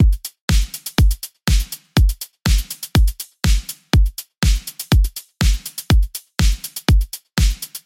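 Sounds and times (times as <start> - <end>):
full drum kit playing: 0.0 - 7.8.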